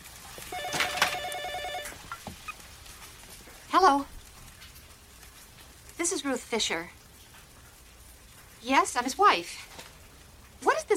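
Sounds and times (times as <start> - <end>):
telephone ringing with a warbling trill: 0.5 - 2.0
speech: 3.8 - 4.1, 6.0 - 7.0, 8.6 - 9.7.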